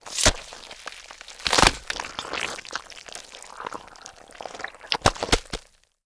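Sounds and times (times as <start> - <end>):
brutal gore splats in a long death move sequence: 1.4 - 2.5.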